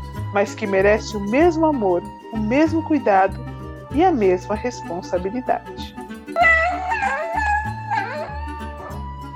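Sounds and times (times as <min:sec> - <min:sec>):
speech: 0:00.3 - 0:06.5
pet howling happily: 0:06.4 - 0:09.3.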